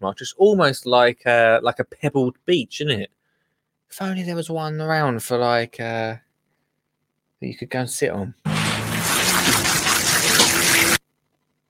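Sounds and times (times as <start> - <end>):
speech: 0.0 - 3.2, 3.9 - 6.2, 7.4 - 8.5
water trickling over stones: 8.6 - 11.0.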